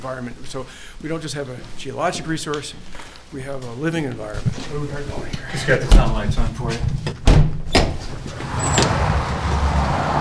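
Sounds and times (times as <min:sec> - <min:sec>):
speech: 0:00.0 - 0:07.5
heavy airlock door banging shut: 0:07.2 - 0:09.8
steady low rumble in a man-made tunnel leading into a cave: 0:08.3 - 0:10.2.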